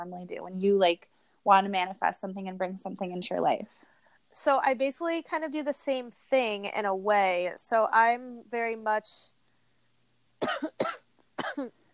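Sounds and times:
speech: 0.0s - 9.3s, 10.4s - 11.8s
harsh coughing: 10.4s - 11.8s.

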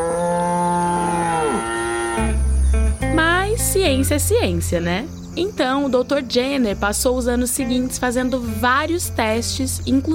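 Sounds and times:
cow mooing: 0.0s - 2.4s
speech: 3.6s - 10.1s.

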